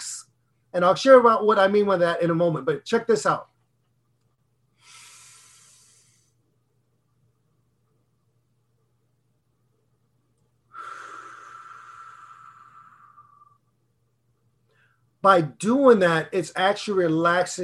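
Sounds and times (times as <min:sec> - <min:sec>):
speech: 0:00.7 - 0:03.5, 0:15.2 - 0:17.6
slow breathing exercise inhaling and exhaling: 0:04.7 - 0:06.6, 0:10.7 - 0:13.8, 0:14.6 - 0:15.2.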